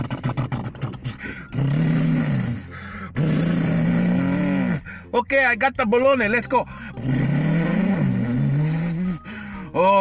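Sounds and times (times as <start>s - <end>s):
truck engine revving: 0.0s - 4.8s, 7.0s - 9.2s
speech: 5.2s - 7.2s, 9.8s - 10.0s.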